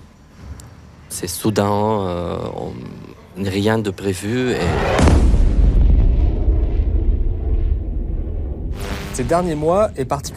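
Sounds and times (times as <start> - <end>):
speech: 1.2 - 5.4, 9.2 - 10.3
sonic boom from military jets: 4.6 - 10.3.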